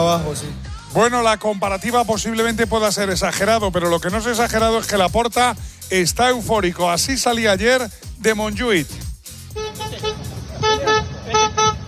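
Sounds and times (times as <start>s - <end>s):
speech: 0.1s - 9.0s
car horn honking short loud toots: 9.5s - 11.8s
busy street-like rumble: 9.6s - 11.8s.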